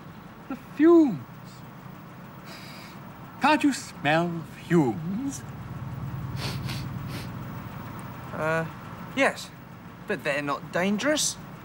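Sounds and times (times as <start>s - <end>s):
car engine idling to warm up in the open air: 0.0s - 11.6s
speech: 0.5s - 1.3s, 3.4s - 5.6s, 8.4s - 11.4s
short breathy hisses: 2.4s - 3.0s, 6.4s - 7.4s.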